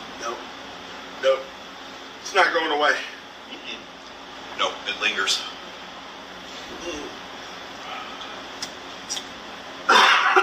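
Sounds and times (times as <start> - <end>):
speech: 1.2 - 1.5, 2.3 - 3.1, 4.6 - 5.6, 6.7 - 7.2
person coughing after eating a hot wing: 9.9 - 10.4.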